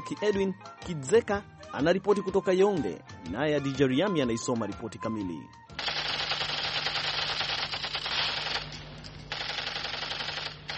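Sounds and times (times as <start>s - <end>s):
speech: 0.0s - 5.6s
toy Kalashnikov gun firing: 5.8s - 10.7s.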